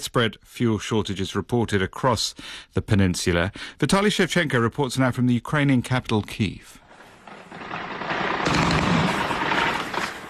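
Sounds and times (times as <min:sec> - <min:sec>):
speech: 0:00.0 - 0:06.8
Russian air defence guns in Crimea firing at Ukrainian drones: 0:06.9 - 0:10.2.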